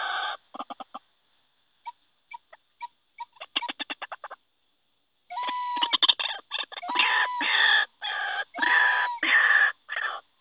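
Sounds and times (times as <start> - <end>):
white-breasted waterhen grating croaks from a lure recording: 1.8 - 4.4, 5.3 - 10.3.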